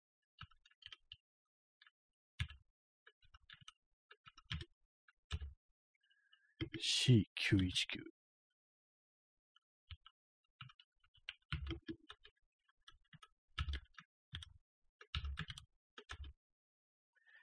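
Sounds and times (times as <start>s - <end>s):
typing on a computer keyboard: 2.4s - 4.7s, 5.3s - 5.6s, 9.9s - 16.4s
speech: 6.8s - 8.2s.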